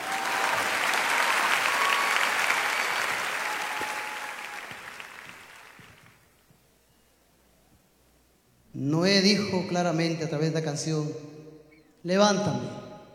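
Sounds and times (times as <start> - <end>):
large audience applause at a concert: 0.0 - 6.2
speech: 8.8 - 11.3, 12.0 - 12.8.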